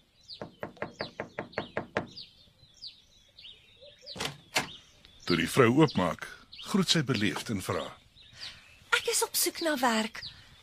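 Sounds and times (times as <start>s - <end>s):
faint bird chirps: 0.0s - 10.6s
knocking on a door: 0.4s - 2.2s
speech: 5.3s - 8.0s, 9.4s - 10.4s.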